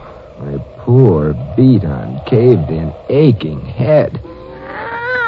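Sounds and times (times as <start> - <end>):
speech: 0.9 - 4.3
cat meowing: 4.2 - 5.2.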